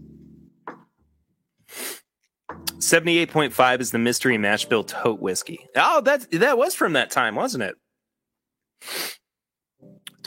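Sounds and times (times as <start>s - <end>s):
speech: 2.8s - 7.8s
person sneezing: 8.8s - 9.2s.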